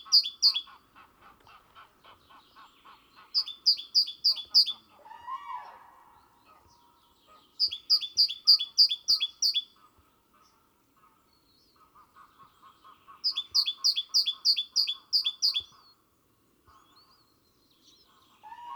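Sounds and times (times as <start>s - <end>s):
great tit Parus major singing two-note phrases: 0.0s - 0.8s, 2.3s - 4.8s, 6.6s - 9.7s, 13.0s - 16.0s.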